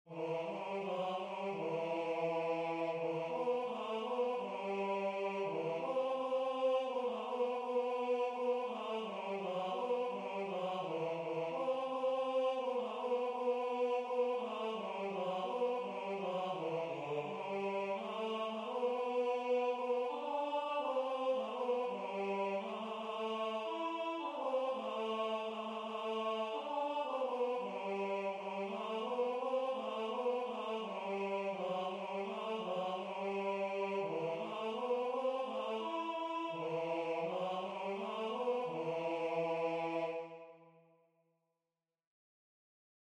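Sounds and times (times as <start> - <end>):
synthesized voices singing in unison: 0.0 - 40.8.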